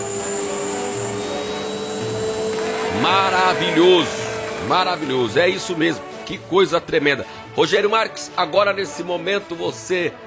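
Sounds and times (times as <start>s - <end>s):
vacuum cleaner running: 0.0s - 6.2s
speech: 3.0s - 10.2s.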